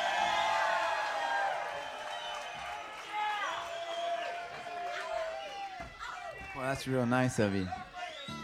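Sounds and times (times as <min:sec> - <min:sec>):
large concert crowd shouting and cheering: 0:00.0 - 0:08.4
speech: 0:06.6 - 0:07.8.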